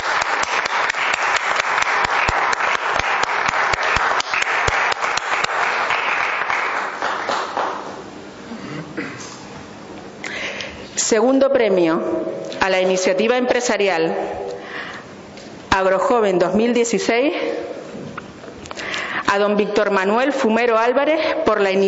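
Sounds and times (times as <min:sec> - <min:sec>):
crowd applauding: 0:00.0 - 0:08.0
murmur of room noise: 0:00.0 - 0:21.8
speech: 0:11.1 - 0:14.4, 0:15.8 - 0:17.7, 0:19.3 - 0:21.8.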